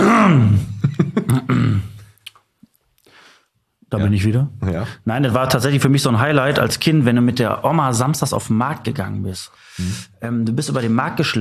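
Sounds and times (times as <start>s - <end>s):
man clearing throat: 0.0s - 2.1s
speech: 3.9s - 11.3s.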